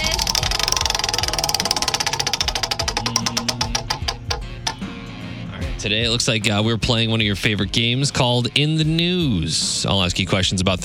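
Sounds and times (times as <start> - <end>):
prize wheel of games spinning with loud clicks: 0.0 - 4.9
speech: 5.8 - 10.8.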